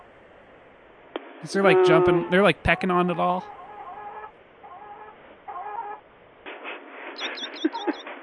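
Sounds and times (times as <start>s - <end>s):
steady hum: 0.0s - 8.2s
speech: 1.4s - 3.6s
chickens clucking: 1.5s - 8.2s.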